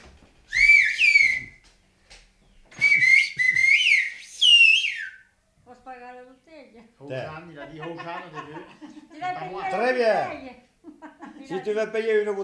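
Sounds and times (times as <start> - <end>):
person whistling a short melodic tune: 0.5 - 1.6, 2.7 - 5.3
speech: 7.0 - 10.6, 11.4 - 12.4
laughter: 7.4 - 9.6, 10.9 - 11.7.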